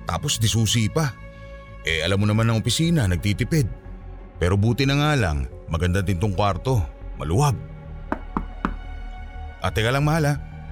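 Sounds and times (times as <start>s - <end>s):
speech: 0.1s - 1.2s, 1.8s - 3.8s, 4.4s - 7.7s, 9.6s - 10.5s
sharp knocking on a hotel room door: 8.1s - 8.9s.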